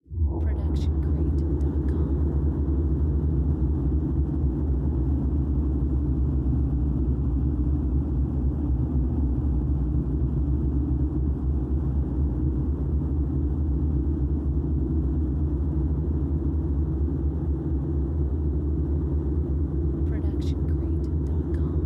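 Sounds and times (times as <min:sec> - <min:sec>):
descending and rising ambience: 0:00.0 - 0:21.8.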